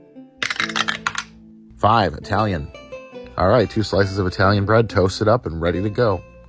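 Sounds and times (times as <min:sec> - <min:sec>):
dice rolling on a hard tabletop: 0:00.4 - 0:01.3
speech: 0:01.8 - 0:02.8, 0:03.4 - 0:06.4.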